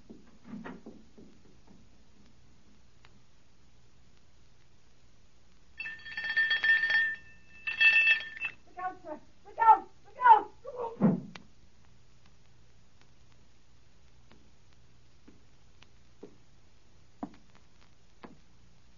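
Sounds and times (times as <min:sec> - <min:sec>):
doorbell ringing loudly in sharp buzzing bursts: 0:05.8 - 0:08.6.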